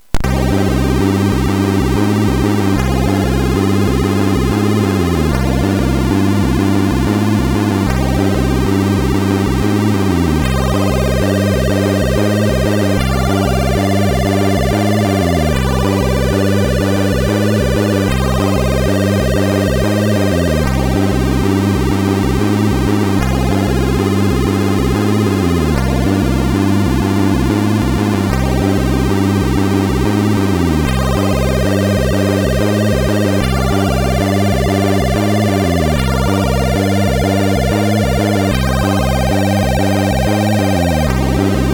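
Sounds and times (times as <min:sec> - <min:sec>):
MOS6581 synthesizer chip chord: 0:00.3 - 0:41.7.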